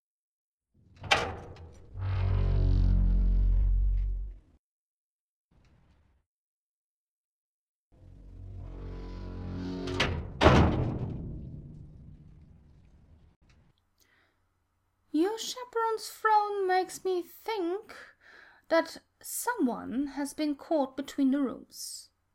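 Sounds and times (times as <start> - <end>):
heavy iron door with a combination lock opening: 0.8 - 4.4, 8.3 - 12.6
heavy iron door grinding scrape: 1.9 - 4.4, 8.0 - 10.0
speech: 15.4 - 18.1, 18.7 - 22.1.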